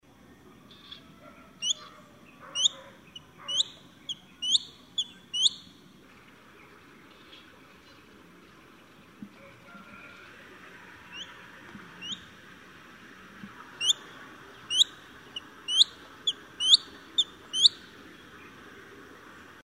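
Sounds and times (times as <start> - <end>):
Crested goshawk calling: 1.6 - 1.9, 2.5 - 5.7, 12.0 - 12.3, 13.8 - 14.0, 14.7 - 17.8.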